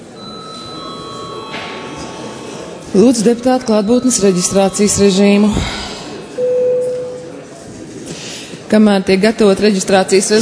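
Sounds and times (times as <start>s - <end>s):
parliament session bell ringing in the chamber: 0.2s - 7.0s
speech: 3.0s - 5.9s, 8.7s - 10.4s.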